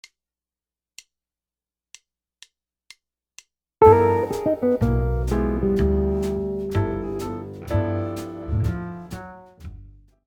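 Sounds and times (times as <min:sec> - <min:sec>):
guitar playing altered scales: 0:03.8 - 0:09.4.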